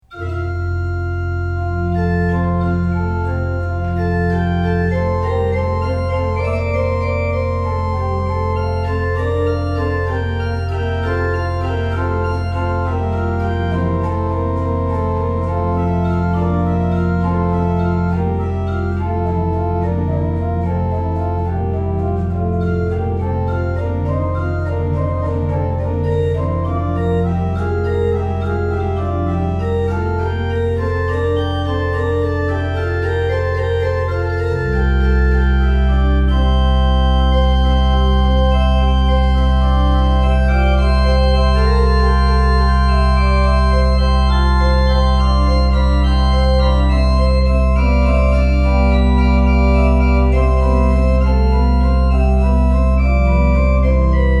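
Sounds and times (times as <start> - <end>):
classical pipe organ in a church: 0.0 - 54.3.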